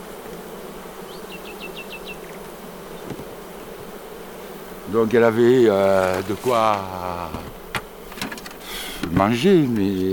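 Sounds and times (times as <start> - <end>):
honeybees buzzing at an open hive: 0.0 - 10.1
speech: 4.9 - 7.6, 9.1 - 10.1.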